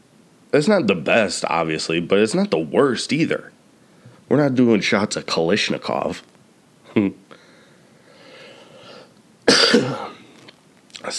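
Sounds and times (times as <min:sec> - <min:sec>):
speech: 0:00.5 - 0:03.6, 0:04.3 - 0:06.3, 0:07.0 - 0:07.2
congested person coughing: 0:09.5 - 0:10.4
throat clearing: 0:09.5 - 0:10.4.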